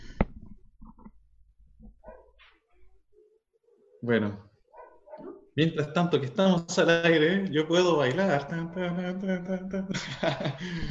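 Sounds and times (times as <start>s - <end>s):
dogs barking outside: 2.0s - 2.5s, 4.7s - 5.6s
speech: 4.0s - 4.5s, 5.6s - 10.8s
laughter: 9.5s - 10.8s.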